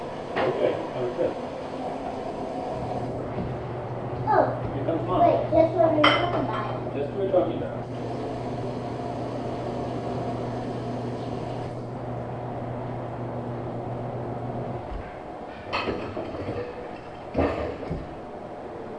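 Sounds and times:
garage door opener motor drone and grinding hum: 0.0s - 5.5s, 6.8s - 18.9s
speech: 0.5s - 1.5s
garage door clunks and rattles: 14.9s - 18.2s.

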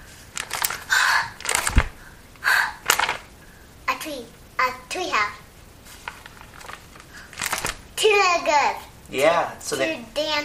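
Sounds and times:
deep breaths taken as a demonstration for a child: 0.7s - 3.8s, 7.0s - 7.6s
speech: 4.0s - 5.4s, 8.0s - 10.4s.

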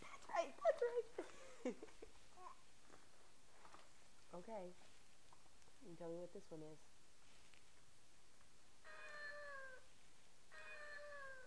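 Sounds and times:
faint hiss: 0.0s - 11.4s
speech: 6.0s - 7.0s
cat meowing: 8.8s - 9.9s, 10.5s - 11.4s.

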